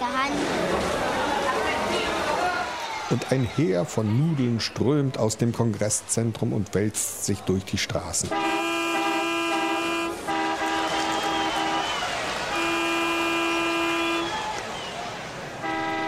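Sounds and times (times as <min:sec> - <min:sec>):
busy traffic rumble: 0:00.0 - 0:16.0
speech: 0:03.1 - 0:08.7
car horns honking at intersections: 0:08.2 - 0:15.0, 0:15.6 - 0:16.0.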